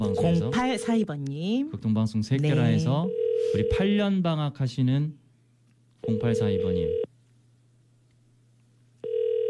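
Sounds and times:
speech: 0:00.0 - 0:05.2, 0:06.1 - 0:07.0
ringback tone of an outgoing phone call from a radio studio: 0:02.8 - 0:03.8, 0:06.0 - 0:07.1, 0:09.0 - 0:09.4.

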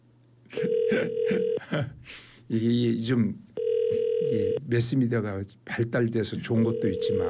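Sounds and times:
speech: 0:00.5 - 0:07.2
telephone ringback tone of an unanswered outgoing call: 0:00.6 - 0:01.6, 0:03.6 - 0:04.6, 0:06.6 - 0:07.2.

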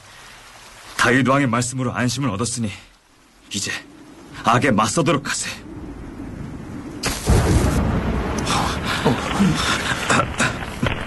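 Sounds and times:
speech: 0:01.0 - 0:05.7, 0:09.4 - 0:10.3
crackling: 0:02.8 - 0:11.0
deep rolling thunder rumble: 0:03.8 - 0:11.0
lightning strike and thunder crack: 0:06.0 - 0:11.0.

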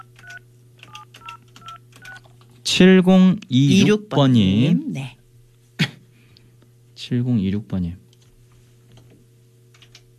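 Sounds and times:
telephone keypad tones on a telephone handset: 0:00.0 - 0:02.2
speech: 0:02.7 - 0:05.2, 0:07.1 - 0:08.0.

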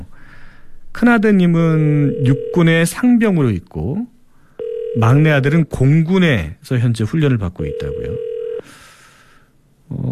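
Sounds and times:
speech: 0:01.0 - 0:04.1, 0:05.0 - 0:08.8, 0:09.9 - 0:10.1
telephone ringing signal while calling a radio listener: 0:02.1 - 0:02.8, 0:04.6 - 0:05.4, 0:07.6 - 0:08.6.

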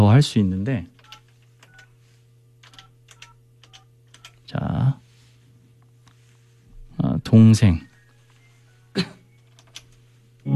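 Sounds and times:
speech: 0:00.0 - 0:00.9, 0:07.3 - 0:07.9, 0:09.0 - 0:09.2
steady low electrical hum: 0:00.0 - 0:10.5
telephone keypad tones as a phone number is dialed: 0:01.0 - 0:01.9, 0:02.6 - 0:04.4.

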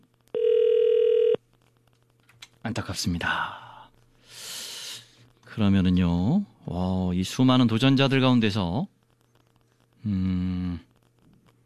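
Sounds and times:
telephone ringback tone electronic beep: 0:00.4 - 0:01.4
speech: 0:02.7 - 0:03.6, 0:05.6 - 0:08.9, 0:10.0 - 0:10.9.

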